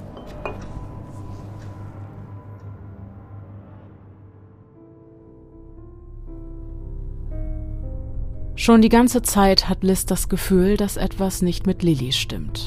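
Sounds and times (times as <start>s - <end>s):
low sustained musical drone with soft tones: 0.0s - 12.6s
glass clinking as taken from a cupboard: 0.1s - 0.8s
speech: 8.6s - 12.6s.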